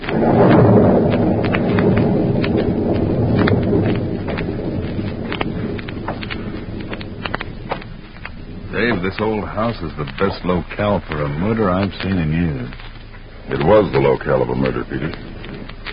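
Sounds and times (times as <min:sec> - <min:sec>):
steady whoosh of wind on a stormy night: 0:00.0 - 0:11.7
rolling thunder on a stormy night at an old house in Illinois: 0:00.0 - 0:15.9
sharp crackles and taps: 0:00.0 - 0:15.9
speech: 0:09.2 - 0:12.9, 0:13.5 - 0:15.3.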